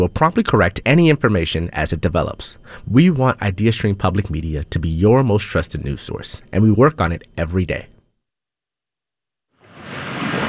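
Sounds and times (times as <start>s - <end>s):
speech: 0.0s - 7.9s
waves lapping and spreading up the shore at Huntington Beach: 9.6s - 10.4s.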